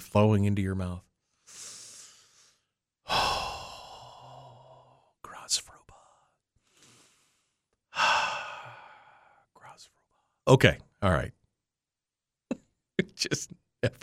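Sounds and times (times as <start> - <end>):
speech: 0.1 - 1.1, 10.5 - 11.4, 13.0 - 14.0
person breathing deeply in a breathing exercise: 1.3 - 5.2, 6.0 - 9.5.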